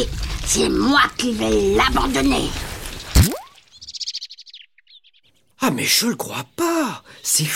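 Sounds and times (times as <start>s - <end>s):
speech: 0.0s - 3.4s, 5.6s - 7.5s
blackbird chirping while tugging at an earthworm: 2.9s - 7.5s.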